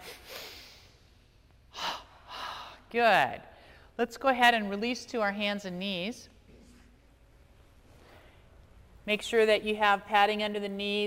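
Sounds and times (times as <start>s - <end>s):
breathing in through the nose and out through the mouth in a breathing exercise: 0.0s - 2.9s, 3.5s - 4.0s, 7.9s - 8.6s
speech: 2.9s - 6.3s, 9.1s - 11.0s.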